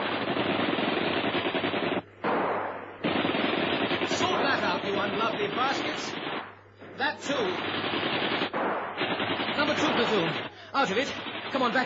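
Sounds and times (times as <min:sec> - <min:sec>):
rapid machine-gun fire: 0:00.0 - 0:11.8
speech: 0:10.3 - 0:11.8.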